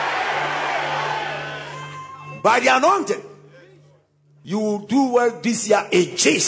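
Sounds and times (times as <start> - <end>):
crowd of worshippers shouting at a preacher during a prayer session: 0.0 - 2.0
speech: 2.4 - 3.3, 4.4 - 6.4.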